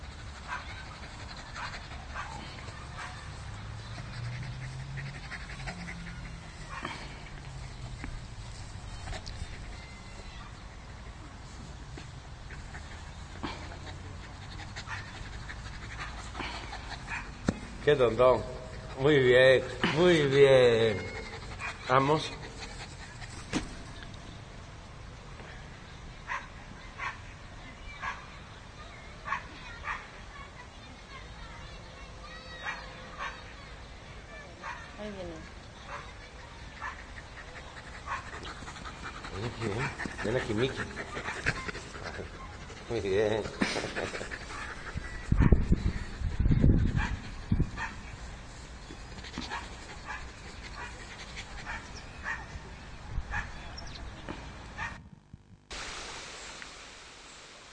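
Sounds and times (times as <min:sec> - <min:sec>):
pet dog panting: 0:00.0 - 0:10.2, 0:12.0 - 0:23.6, 0:35.4 - 0:52.5
speech: 0:17.9 - 0:21.1, 0:21.9 - 0:22.4
pet dog barking: 0:51.7 - 0:52.5, 0:53.3 - 0:53.6.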